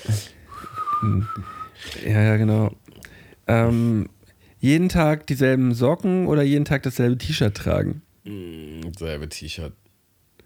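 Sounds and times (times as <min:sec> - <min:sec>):
single steady whistle tone: 0:00.5 - 0:01.8
speech: 0:01.0 - 0:09.8.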